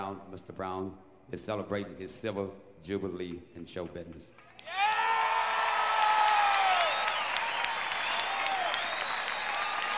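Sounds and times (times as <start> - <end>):
speech: 0.0 - 4.8
large crowd clapping: 4.5 - 9.9
enthusiastic crowd cheers and whoops: 4.6 - 9.9.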